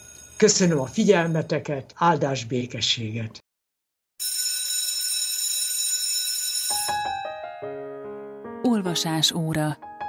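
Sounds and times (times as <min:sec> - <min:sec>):
loud bright bell ringing: 0:00.0 - 0:01.6, 0:04.2 - 0:07.4
speech: 0:00.4 - 0:03.4, 0:08.7 - 0:09.9.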